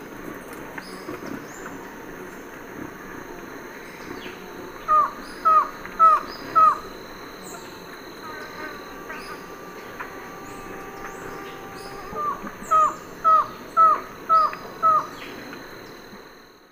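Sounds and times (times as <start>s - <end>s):
constant high insect hum: 0.0s - 16.7s
faint chirps: 3.7s - 16.7s
white-shouldered antshrike singing nasal falling notes: 4.2s - 16.0s.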